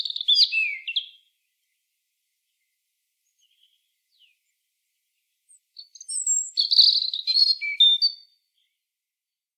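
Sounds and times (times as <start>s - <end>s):
European robin Erithacus rubecula singing a high warbling phrase: 0.0s - 1.8s, 2.6s - 4.6s, 5.5s - 8.8s.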